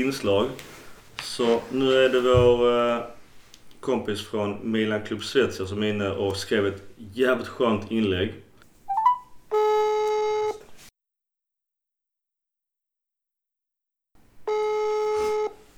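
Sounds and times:
speech: 0.0 - 3.2, 3.8 - 8.4
phone line dialing chirp: 8.9 - 10.5
unanswered phone line electronic ring tones: 8.9 - 10.6, 14.5 - 15.6.

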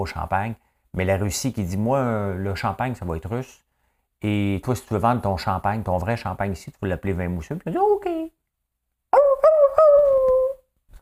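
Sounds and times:
speech: 0.0 - 3.6, 4.2 - 8.4, 9.4 - 10.4
person mimicking a dog's whimper: 9.1 - 11.0.

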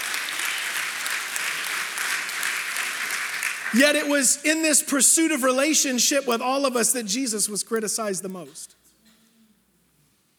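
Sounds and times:
church audience applauding: 0.0 - 4.4
speech: 3.7 - 8.8.

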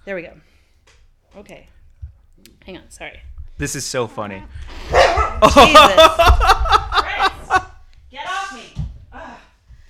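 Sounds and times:
speech: 0.0 - 0.6, 1.3 - 1.8, 2.4 - 6.9
dog yapping: 4.9 - 5.4
laughter: 5.2 - 7.8.

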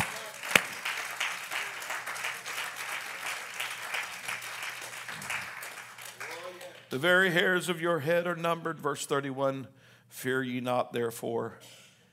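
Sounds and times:
single sharp clap: 0.0 - 1.0
audience applause: 0.0 - 6.9
speech: 6.9 - 11.8.

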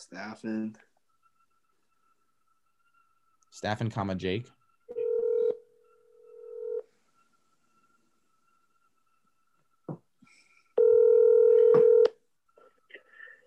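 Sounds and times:
speech: 0.0 - 0.9, 3.5 - 4.6
telephone touch tones as a number is dialed: 4.9 - 6.9, 10.8 - 12.2.

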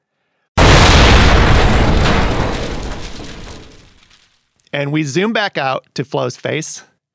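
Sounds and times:
gas range exploding with a loud boom and fiery rumble: 0.6 - 4.1
speech: 4.8 - 6.9.

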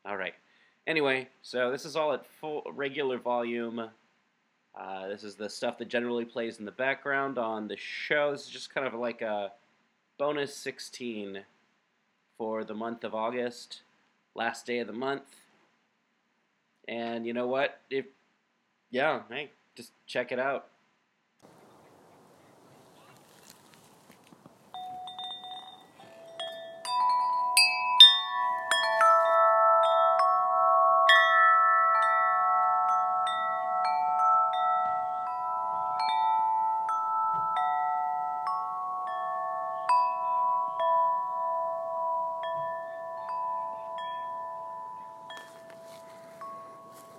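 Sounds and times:
speech: 0.3 - 4.0, 4.8 - 9.6, 10.2 - 11.5, 12.4 - 15.4, 16.9 - 18.2, 18.9 - 20.7
metal chimes ringing in a backyard: 24.6 - 47.1.

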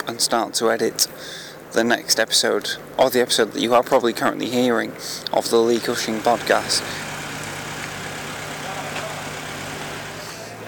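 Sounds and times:
speech: 0.2 - 7.1
builders' vehicles on a dockside driving with low engine rumble: 5.6 - 10.4.

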